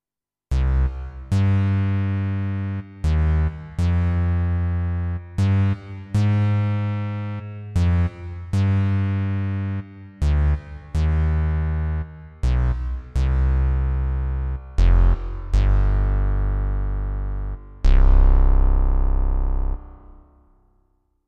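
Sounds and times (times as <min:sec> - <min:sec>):
synth bass: 0:00.5 - 0:20.8.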